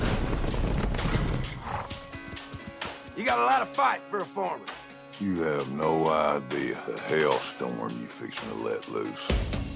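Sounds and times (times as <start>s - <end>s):
horse hooves of men riding in on horseback clattering: 0.0s - 3.9s
horse whinnying: 1.0s - 2.6s
speech: 3.2s - 9.6s.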